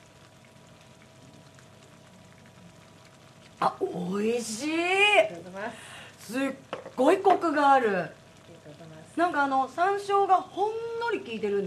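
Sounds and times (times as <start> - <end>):
mapo tofu bubbling and sizzling in a hot stone pot: 0.0 - 11.6
speech: 3.6 - 11.6.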